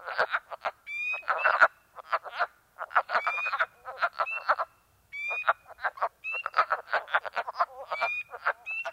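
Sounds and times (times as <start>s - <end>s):
wood frogs cackling in hoarse clucks at a woodland pool in New York State: 0.0s - 8.9s.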